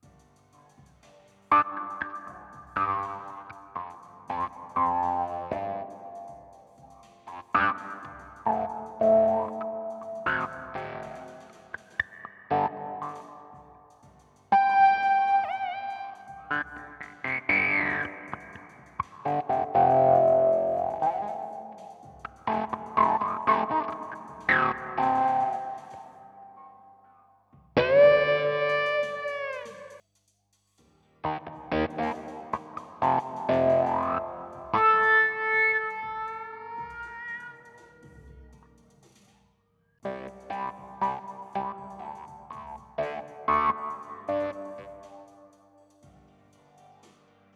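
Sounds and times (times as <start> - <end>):
fuzz guitar: 1.5 - 6.4, 7.0 - 13.7, 14.5 - 26.3, 27.8 - 30.0, 31.2 - 38.1, 40.0 - 45.5.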